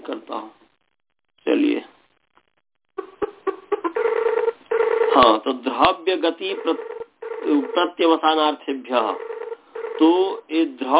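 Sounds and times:
sustained ringing tone of a phone call over Skype: 0:03.9 - 0:05.4, 0:06.4 - 0:08.0, 0:09.0 - 0:10.4
speech: 0:05.2 - 0:09.3, 0:10.0 - 0:10.9
short tonal beeps of a phone call being dialed over Skype: 0:06.5 - 0:07.9, 0:09.1 - 0:10.2.

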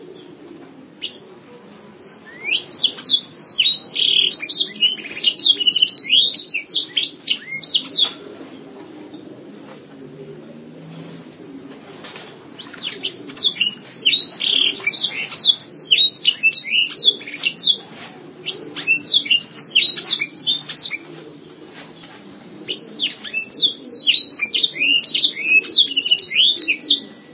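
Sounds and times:
canary singing fast high twittering phrases: 0:01.0 - 0:01.3, 0:02.0 - 0:08.2, 0:12.6 - 0:17.8, 0:18.4 - 0:21.1, 0:22.7 - 0:27.3.

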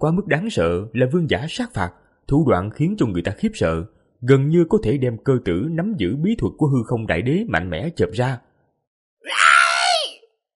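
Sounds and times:
speech: 0:00.0 - 0:08.5, 0:09.2 - 0:09.5
long scream: 0:09.2 - 0:10.3.

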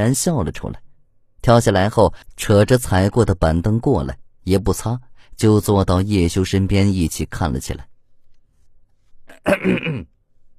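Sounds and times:
speech: 0:00.0 - 0:07.9, 0:09.4 - 0:10.1
man coughing or clearing his throat: 0:09.3 - 0:10.1.

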